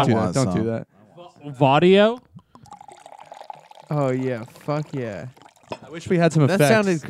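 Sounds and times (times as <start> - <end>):
speech: 0.0 - 2.3, 3.9 - 7.0
vodka pouring into a glass: 2.1 - 6.8.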